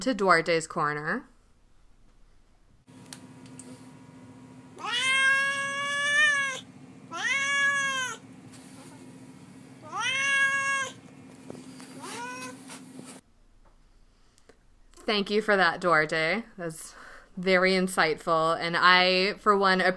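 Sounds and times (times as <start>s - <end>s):
speech: 0.0s - 1.3s, 15.1s - 19.9s
cat meowing: 4.8s - 8.2s, 9.8s - 11.0s, 12.0s - 12.6s.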